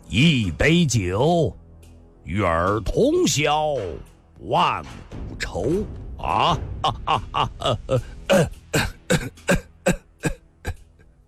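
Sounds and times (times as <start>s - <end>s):
speech: 0.1s - 1.6s, 2.3s - 10.0s
laughter: 6.2s - 9.6s
person coughing harshly: 6.9s - 10.9s.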